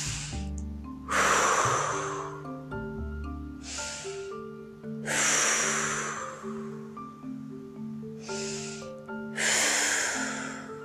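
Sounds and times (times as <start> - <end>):
deep breaths: 0.0 - 0.5, 1.1 - 2.7, 3.5 - 7.1, 8.1 - 10.8
soft sustained music: 0.0 - 10.8.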